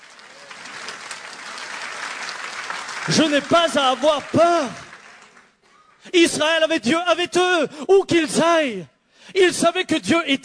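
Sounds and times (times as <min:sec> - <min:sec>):
audience applause during a French church sermon: 0:00.0 - 0:06.1
speech: 0:03.1 - 0:04.8, 0:06.0 - 0:10.4.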